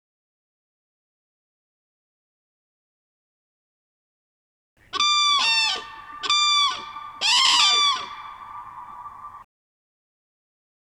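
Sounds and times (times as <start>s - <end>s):
common crane trumpeting played back: 5.0s - 9.4s.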